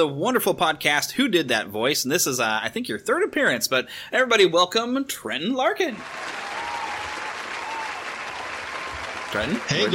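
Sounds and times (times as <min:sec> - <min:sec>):
speech: 0:00.0 - 0:06.4, 0:09.3 - 0:09.9
dense crowd applause: 0:06.0 - 0:09.9.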